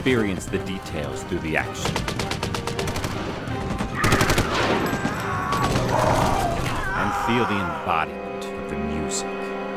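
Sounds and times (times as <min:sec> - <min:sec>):
speech: 0:00.0 - 0:02.4, 0:07.3 - 0:09.6
.50 caliber machine guns firing in rapid bursts: 0:01.8 - 0:05.9
people shouting: 0:04.0 - 0:07.9.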